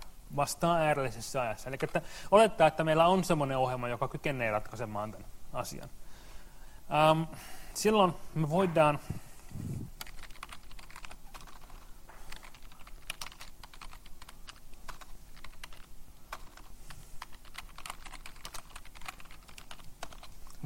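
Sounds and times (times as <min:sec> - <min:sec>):
speech: 0:00.4 - 0:06.0, 0:06.9 - 0:09.8
fast typing on a computer keyboard: 0:10.0 - 0:20.6.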